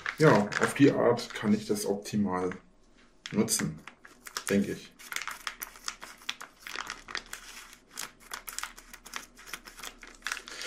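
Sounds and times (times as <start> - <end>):
plastic mozzarella bag crinkling: 0.0 - 2.6, 3.3 - 10.6
speech: 0.2 - 2.7, 3.3 - 3.9, 4.5 - 5.2.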